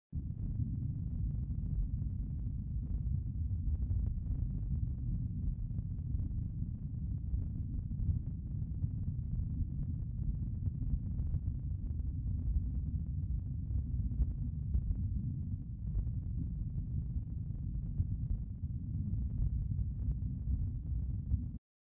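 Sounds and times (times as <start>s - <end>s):
ambience: 0.2s - 21.6s.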